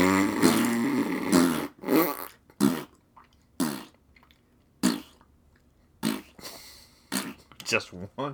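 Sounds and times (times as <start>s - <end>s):
person blowing raspberries imitating flatulence: 0.0s - 3.0s, 3.6s - 4.0s, 4.8s - 5.2s, 6.0s - 7.5s
speech: 7.7s - 8.3s.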